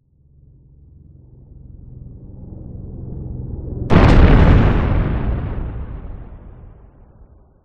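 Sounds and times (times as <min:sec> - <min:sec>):
distant helicopter: 0:00.2 - 0:03.9
distant explosions: 0:03.9 - 0:07.6.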